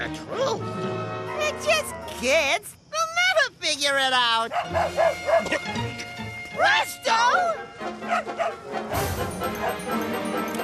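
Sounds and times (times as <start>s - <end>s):
speech: 0.0s - 2.8s, 3.6s - 10.6s
dog barking: 4.5s - 5.6s, 8.0s - 8.6s.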